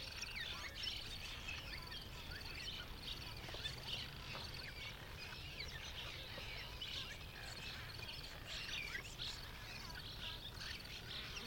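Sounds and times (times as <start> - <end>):
Cliff Swallows chattering: 0.0 - 11.4.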